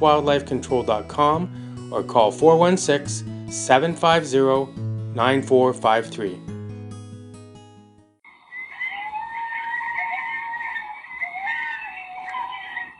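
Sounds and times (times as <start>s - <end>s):
speech: 0.0s - 6.5s
chorus of coyotes howling and yipping: 8.3s - 12.9s.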